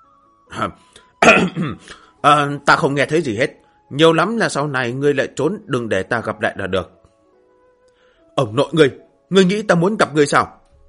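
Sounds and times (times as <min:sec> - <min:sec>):
speech: 0:00.6 - 0:07.0, 0:08.4 - 0:10.6
man giving dry rasping coughs: 0:01.2 - 0:02.0.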